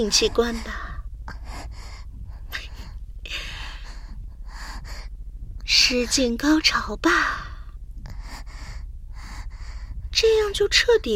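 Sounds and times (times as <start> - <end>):
speech: 0.0 - 0.8, 5.9 - 7.4, 10.2 - 11.1
rapid heavy breathing with sharp gasps: 0.0 - 5.2, 7.2 - 10.1.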